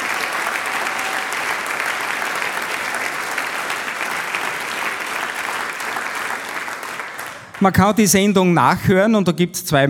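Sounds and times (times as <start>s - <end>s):
audience applause for a folk music group: 0.0s - 7.8s
speech: 7.6s - 9.8s.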